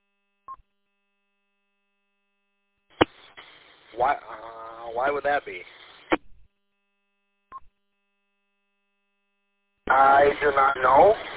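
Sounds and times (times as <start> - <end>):
crackling burst of radio static: 2.9 - 6.3, 9.9 - 11.3
speech: 4.0 - 5.7, 9.9 - 11.3.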